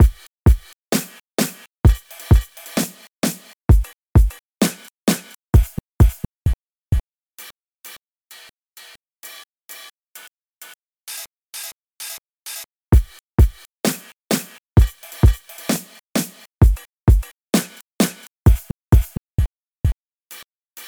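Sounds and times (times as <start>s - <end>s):
dive break slices: 0.0s - 6.2s, 13.0s - 19.1s.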